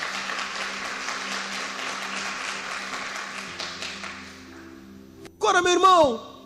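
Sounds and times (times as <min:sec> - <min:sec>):
audience applauding: 0:00.0 - 0:04.4
speech: 0:05.5 - 0:06.3.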